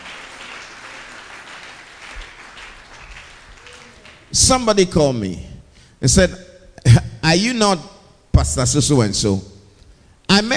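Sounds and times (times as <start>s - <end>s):
church audience clapping: 0.0s - 4.8s
speech: 4.3s - 6.4s, 7.2s - 9.5s.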